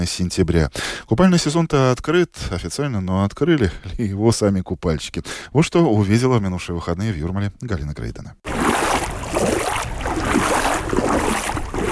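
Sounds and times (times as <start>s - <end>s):
speech: 0.0s - 8.6s
sea waves lapping at the shoreline: 8.5s - 11.9s.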